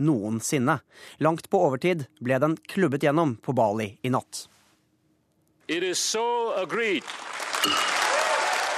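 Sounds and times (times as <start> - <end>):
speech: 0.0 - 4.6, 5.7 - 8.0
WTO delegates applauding after trade agreement: 6.5 - 8.7
WTO delegates cheering after trade agreement: 6.6 - 8.7
person whooping loudly: 8.0 - 8.7.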